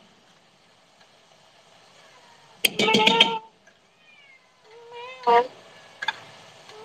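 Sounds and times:
cat meowing: 2.0s - 6.1s.

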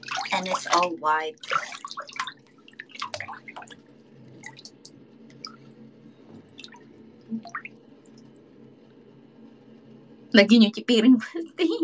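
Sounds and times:
water dripping: 0.0s - 5.8s, 6.4s - 8.4s
speech: 0.3s - 2.0s, 10.3s - 11.8s.

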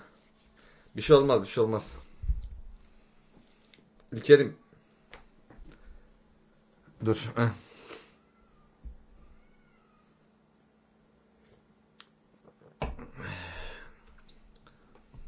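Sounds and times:
speech: 1.0s - 2.1s, 4.1s - 4.6s, 7.0s - 7.7s
pet cats meowing: 8.2s - 10.2s.

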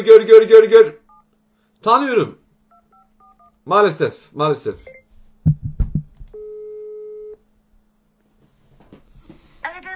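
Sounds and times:
speech: 0.0s - 1.0s, 1.8s - 2.4s, 3.7s - 5.6s
telephone busy tone of a blocked call: 6.4s - 7.4s.

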